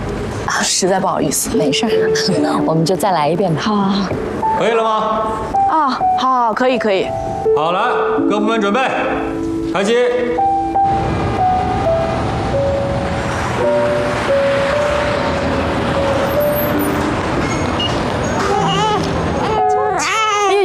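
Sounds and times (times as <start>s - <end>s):
steady noisy sound: 0.0s - 20.6s
speech: 0.6s - 10.5s
baby crying: 18.4s - 20.6s.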